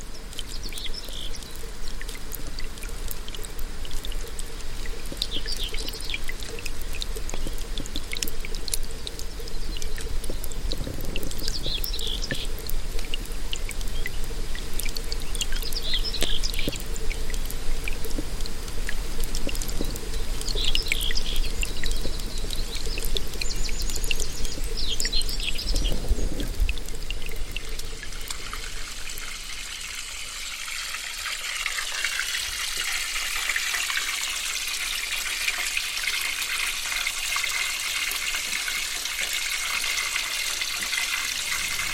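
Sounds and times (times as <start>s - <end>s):
river water flowing: 0.0s - 41.9s.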